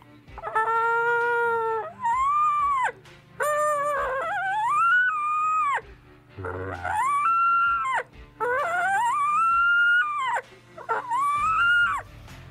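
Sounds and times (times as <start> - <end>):
hand-blown reed predator mouth call wailing at low pressure: 0.4 - 12.1.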